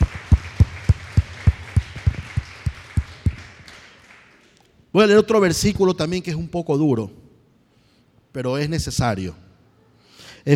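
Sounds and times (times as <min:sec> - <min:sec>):
church congregation applause during a sermon: 0:00.0 - 0:04.8
speech: 0:05.0 - 0:07.2, 0:08.4 - 0:09.5.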